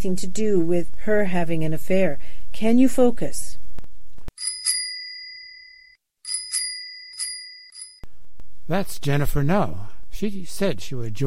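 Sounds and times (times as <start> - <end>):
speech: 0.0 - 3.6, 8.7 - 11.2
bicycle bell ringing: 4.4 - 8.1.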